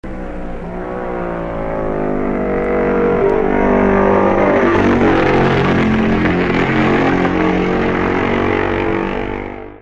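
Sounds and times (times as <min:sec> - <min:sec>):
1964 Norton motorcycle: 0:00.0 - 0:09.8.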